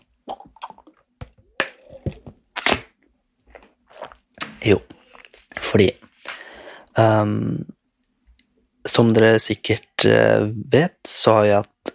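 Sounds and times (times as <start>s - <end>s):
person swallowing and gulping water: 0.2s - 2.8s
speech: 4.6s - 4.9s, 5.7s - 6.0s, 7.0s - 7.7s, 9.0s - 11.7s.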